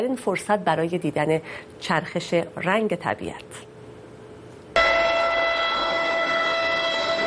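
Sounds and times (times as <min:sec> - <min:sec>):
speech: 0:00.0 - 0:03.7
loud sustained train horn blast: 0:04.8 - 0:07.2.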